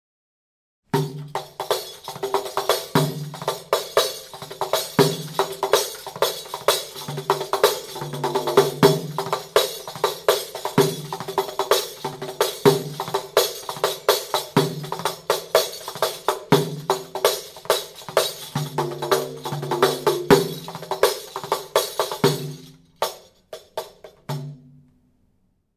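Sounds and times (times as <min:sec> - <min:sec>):
riqq tambourine: 0:00.9 - 0:24.8.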